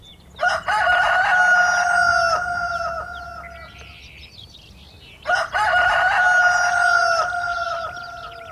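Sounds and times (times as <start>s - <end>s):
rooster crowing loudly: 0.4s - 3.7s, 5.3s - 8.5s.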